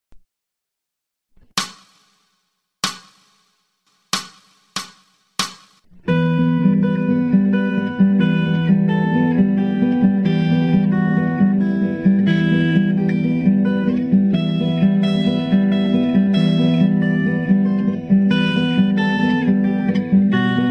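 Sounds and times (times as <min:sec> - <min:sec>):
guitar: 0:05.8 - 0:20.6.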